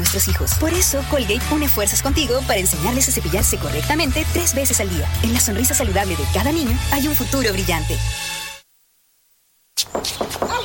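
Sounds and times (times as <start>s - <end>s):
speech: 0.1s - 8.4s
sharp knocks on a door: 10.0s - 10.6s.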